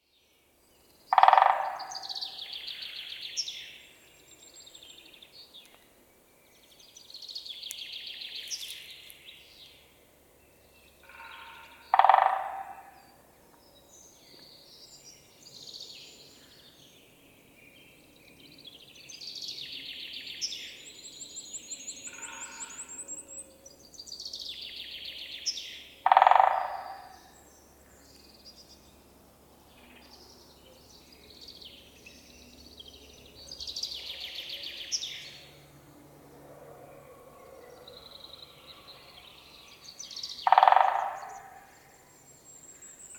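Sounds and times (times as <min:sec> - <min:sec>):
woodpeckers Picidae: 0:01.1 - 0:02.4, 0:11.0 - 0:13.1, 0:26.0 - 0:27.3, 0:40.2 - 0:41.8.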